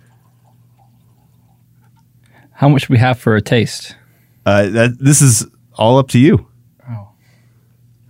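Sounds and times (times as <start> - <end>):
lime hard seltzer poured into a wine glass: 0.0 - 2.2
low hum: 0.0 - 8.0
speech: 2.6 - 6.5.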